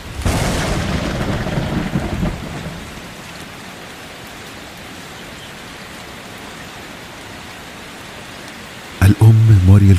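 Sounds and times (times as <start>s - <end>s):
rolling thunder in a heavy thunderstorm: 0.0s - 3.3s
pouring rain: 0.0s - 9.9s
speech: 9.3s - 9.9s.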